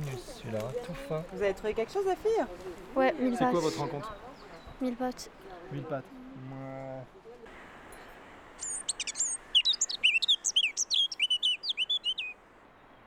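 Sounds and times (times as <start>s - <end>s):
outdoor noise: 0.0s - 13.0s
speech: 0.5s - 6.6s
Eurasian blackcap singing: 8.6s - 12.3s.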